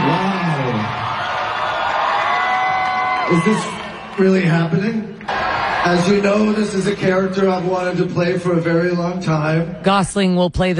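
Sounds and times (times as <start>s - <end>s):
large convention crowd screaming and cheering: 0.0s - 7.9s
speech: 3.3s - 10.7s.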